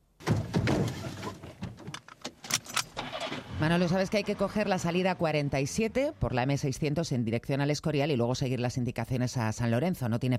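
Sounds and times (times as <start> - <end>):
rustling and shuffling of someone climbing into a car: 0.2 - 2.5
speech: 3.6 - 10.3.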